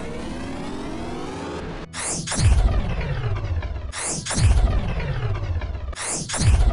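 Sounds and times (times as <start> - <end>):
bright sweeping zap of a sci-fi energy cannon firing: 1.9 - 3.3, 3.9 - 5.3, 6.0 - 6.7
deep booming rumble of energy shots exploding: 2.4 - 6.7.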